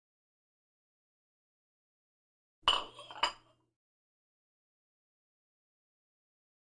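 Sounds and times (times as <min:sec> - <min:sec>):
glass cup placed on glass saucer: 0:02.7 - 0:03.5.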